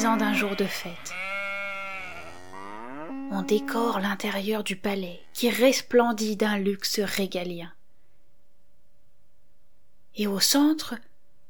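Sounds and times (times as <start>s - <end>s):
speech: 0.0s - 1.2s, 3.3s - 7.8s, 10.2s - 11.1s
sheep bleating: 0.0s - 4.1s, 4.9s - 5.6s.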